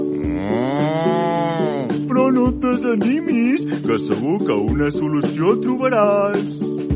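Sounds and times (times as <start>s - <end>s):
cow mooing: 0.2s - 2.1s
speech: 2.9s - 6.8s.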